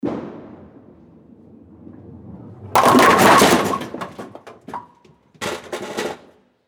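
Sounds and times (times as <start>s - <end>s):
bowling ball striking all pins: 2.8s - 5.0s.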